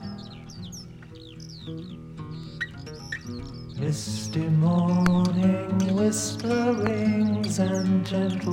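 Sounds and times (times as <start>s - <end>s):
high sweeping bird calls: 0.0s - 8.5s
speech: 1.7s - 2.1s, 3.8s - 8.5s.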